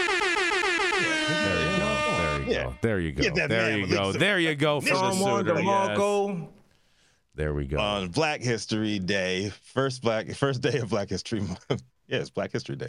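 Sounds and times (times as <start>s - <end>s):
loud brassy air horn blaring: 0.0s - 2.8s
speech: 2.5s - 6.6s, 7.4s - 12.8s.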